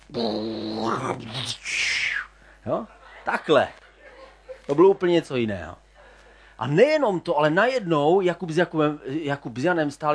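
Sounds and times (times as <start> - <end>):
speech: 0.1 - 1.9, 2.6 - 3.8, 4.7 - 5.8, 6.6 - 10.1
person imitating rushing wind with their voice: 0.1 - 2.4
laughter: 2.7 - 6.4.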